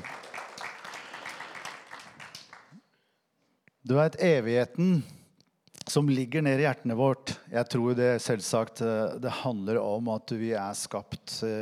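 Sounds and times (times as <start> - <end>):
audience applause: 0.0 - 2.8
speech: 3.9 - 5.2, 6.0 - 11.6.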